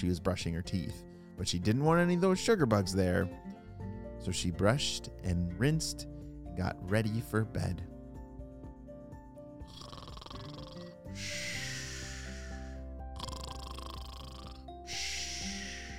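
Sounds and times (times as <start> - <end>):
speech: 0.0 - 3.6, 4.2 - 7.9
soft tonal music bed: 0.0 - 15.9
parents snoring while asleep: 9.7 - 15.9.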